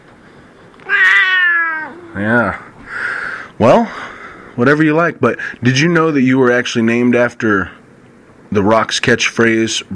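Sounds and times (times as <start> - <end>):
cat meowing: 0.8 - 2.2
speech: 2.2 - 2.7, 3.6 - 7.8, 8.5 - 9.9.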